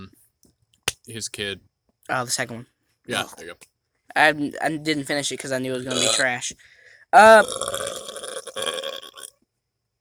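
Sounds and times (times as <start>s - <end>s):
speech: 1.1s - 7.8s
loud rumbling burp: 5.9s - 6.3s, 7.2s - 9.3s.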